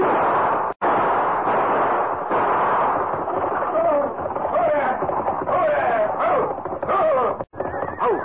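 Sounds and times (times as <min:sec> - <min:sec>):
gunshots in a stagecoach robbery: 0:00.0 - 0:07.5
continuous rumbling din: 0:00.0 - 0:08.2
faint voices: 0:03.4 - 0:08.2.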